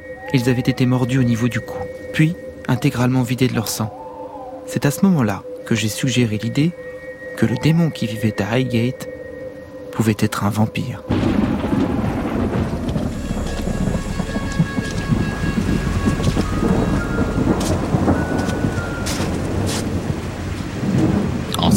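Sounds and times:
speech: 0.3 - 4.0, 4.7 - 9.2, 10.0 - 11.2
heavy rain: 11.1 - 21.7
thunder rumbling: 11.1 - 21.7.

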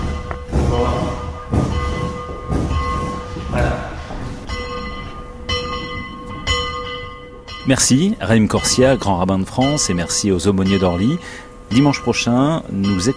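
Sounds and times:
bells rung by a pastor at an airport: 0.0 - 13.1
speech: 7.7 - 13.1.

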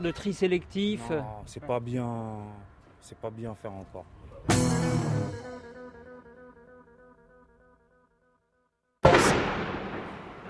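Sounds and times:
speech: 0.0 - 5.6
heavy explosive booms at a waste incineration plant: 9.0 - 10.4.

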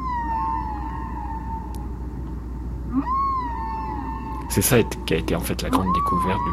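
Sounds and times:
humpback whale song in the middle of the ocean: 0.0 - 2.2, 2.8 - 5.0, 5.8 - 6.5
speech: 4.5 - 6.5.

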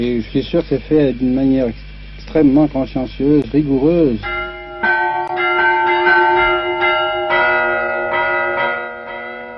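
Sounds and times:
speech: 0.0 - 4.3
church bell ringing: 4.2 - 9.5.

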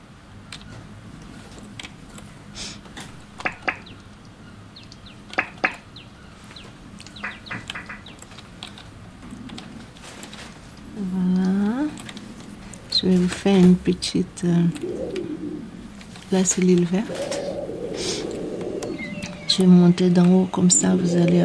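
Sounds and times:
steady low outdoor rumble: 0.0 - 21.4
small birds chirping outdoors: 3.1 - 21.4
speech: 13.2 - 15.4, 16.3 - 17.4, 19.6 - 21.4.

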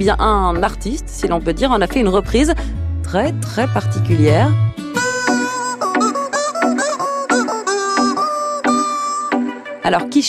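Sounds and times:
speech: 0.0 - 4.7, 9.9 - 10.2
squeaky plastic chicken toy squeezed to play a pop melody: 5.0 - 9.5.

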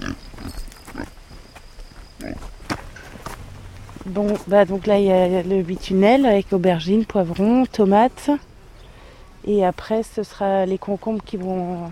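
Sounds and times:
piglets grunting and squealing: 0.0 - 1.1
rustling farmyard noise: 0.0 - 11.9
speech: 4.1 - 8.5, 9.4 - 11.9.

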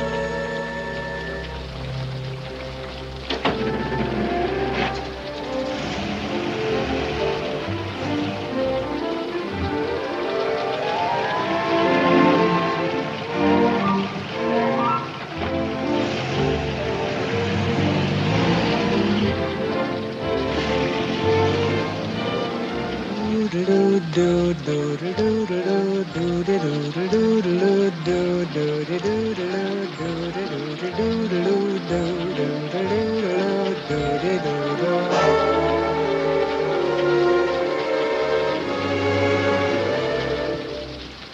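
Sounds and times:
rain pattering on a hard surface: 0.0 - 41.3
tonal music-like sounds: 0.0 - 41.3.

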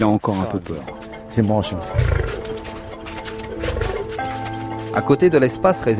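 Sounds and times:
speech: 0.0 - 2.4, 5.0 - 5.9
lion roaring: 1.8 - 2.6, 3.4 - 4.2.

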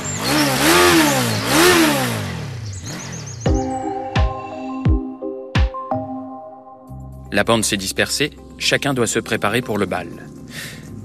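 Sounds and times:
small moped engine revving: 0.0 - 3.8
speech: 7.3 - 10.8.

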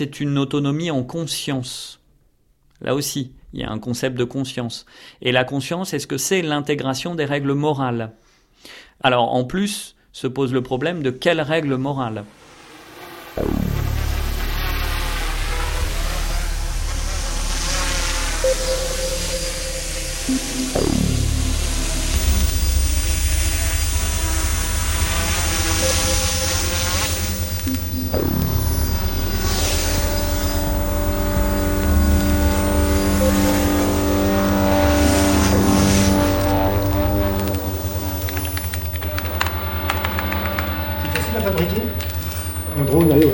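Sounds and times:
speech: 0.0 - 2.0, 2.8 - 12.4, 13.4 - 13.6
drone motors whirring: 12.6 - 43.3.

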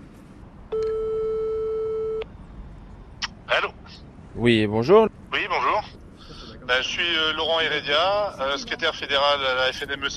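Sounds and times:
telephone line tone while a call is placed: 0.7 - 2.3
speech: 4.4 - 5.2, 6.7 - 10.1.

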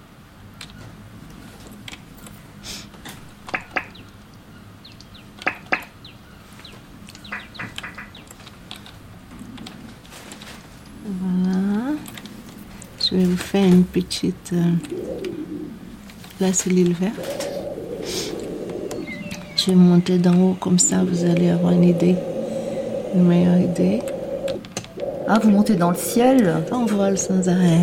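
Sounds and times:
small birds chirping faintly at a distance: 3.3 - 10.0, 10.8 - 27.8
speech: 13.1 - 15.4, 16.4 - 17.4, 19.6 - 22.3, 23.1 - 24.1, 25.3 - 27.8
brief voice hum: 14.3 - 27.8.

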